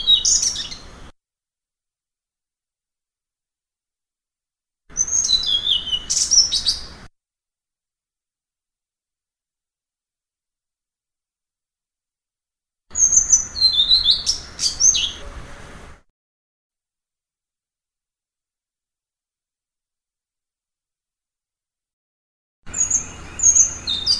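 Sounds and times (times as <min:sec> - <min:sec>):
blue-throated flycatcher song: 0:00.0 - 0:01.1, 0:04.9 - 0:07.1, 0:12.9 - 0:15.3, 0:22.7 - 0:24.1.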